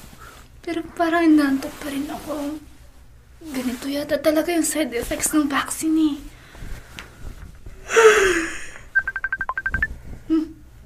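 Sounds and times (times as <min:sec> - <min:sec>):
speech: 0:00.7 - 0:02.7, 0:03.4 - 0:06.4
phone ringing with an incoming call in short electronic beeps: 0:09.0 - 0:09.9.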